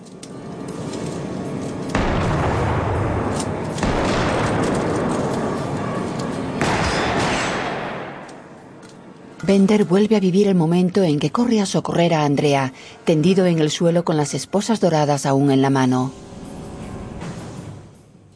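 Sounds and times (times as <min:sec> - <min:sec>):
gunfire with heavy shots: 0:01.9 - 0:08.7
speech: 0:09.5 - 0:16.3.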